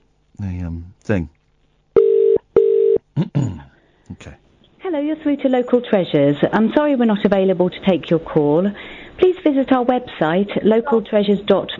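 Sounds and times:
speech: 0.4 - 1.4, 3.2 - 11.7
phone line ringback tone: 2.0 - 3.0.

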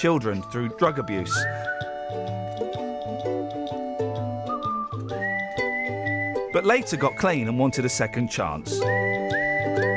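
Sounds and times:
speech: 0.0 - 2.3, 6.6 - 9.1
bright steady whistle: 0.9 - 9.9
looping musical backing with a pulsing bass line: 1.0 - 6.5.

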